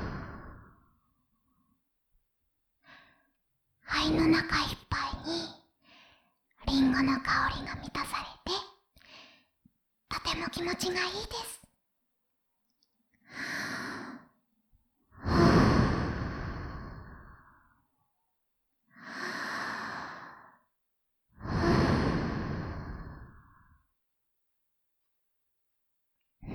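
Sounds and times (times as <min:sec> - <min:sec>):
deep breathing while inhaling apple-scented steam: 0:00.0 - 0:00.9, 0:15.2 - 0:17.8, 0:19.0 - 0:20.7, 0:21.4 - 0:23.8
speech: 0:03.9 - 0:05.5, 0:06.7 - 0:08.6, 0:10.1 - 0:11.6, 0:13.3 - 0:13.7.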